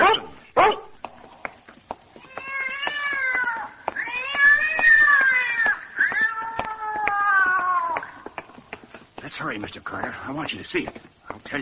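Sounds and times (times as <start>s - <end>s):
faint clicks and crackle: 1.0s - 11.5s
big cat caterwauling on packing boxes: 2.2s - 8.2s
speech: 9.6s - 11.5s.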